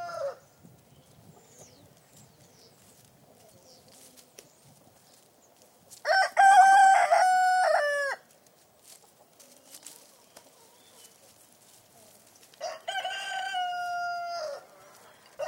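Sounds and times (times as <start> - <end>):
rooster crowing cock-a-doodle-doo in a yard: 6.1 - 8.2, 12.6 - 15.4.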